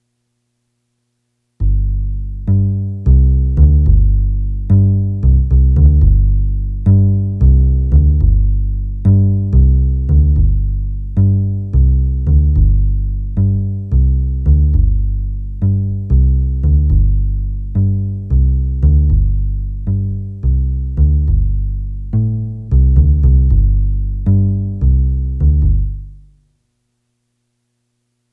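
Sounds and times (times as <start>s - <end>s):
bass keys: 1.6s - 26.4s.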